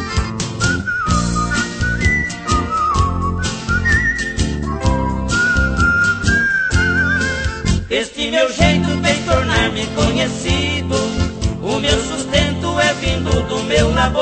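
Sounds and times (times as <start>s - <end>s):
person whistling a melody: 0.0s - 7.9s
steady rhythmic band accompaniment: 0.0s - 7.9s, 8.6s - 14.2s
speech: 8.0s - 11.2s.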